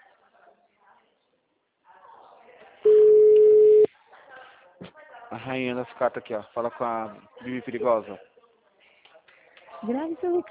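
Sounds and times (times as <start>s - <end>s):
phone call ringing tone beep: 2.9s - 3.9s
speech: 5.3s - 8.3s, 9.8s - 10.4s.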